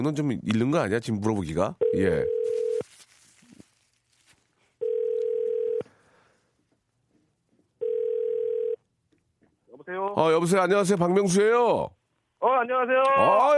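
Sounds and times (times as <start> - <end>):
speech: 0.0 - 2.6, 9.9 - 13.5
faint noise: 0.0 - 13.5
telephone ringback tone while placing a call: 1.8 - 2.8, 4.8 - 5.9, 7.8 - 8.8.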